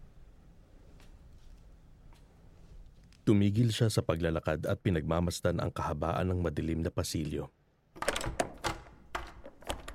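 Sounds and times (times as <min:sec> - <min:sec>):
speech: 0:03.3 - 0:07.6
door thunks and knocks as someone tries to open it in a dark corridor: 0:08.0 - 0:09.9.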